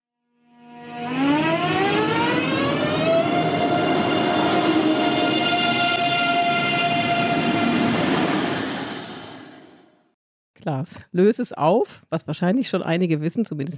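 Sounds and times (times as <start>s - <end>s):
ICE high-speed electric train accelerating from standstill: 0.7s - 10.0s
speech: 10.8s - 13.7s.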